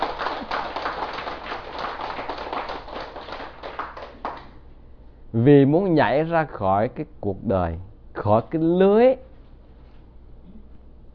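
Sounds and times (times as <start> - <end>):
crowd applauding with many hands clapping: 0.0 - 4.5
speech: 5.3 - 9.3.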